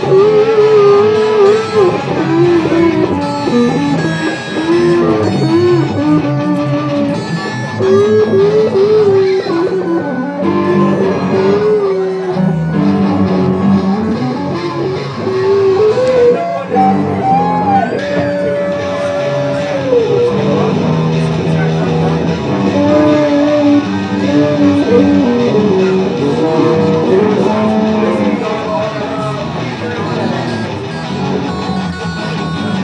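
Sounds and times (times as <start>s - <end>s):
children playing guitars: 0.0s - 32.8s.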